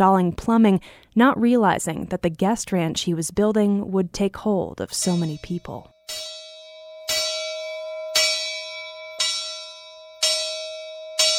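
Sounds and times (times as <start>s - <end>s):
speech: 0.0s - 6.3s
guest ranch bell clanging to announce breakfast: 5.0s - 11.3s.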